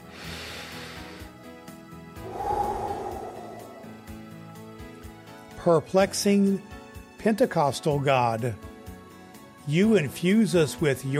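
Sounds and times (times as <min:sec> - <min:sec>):
deep breaths taken during a prayer: 0:02.2 - 0:04.2
speech: 0:05.6 - 0:08.7, 0:09.6 - 0:11.1.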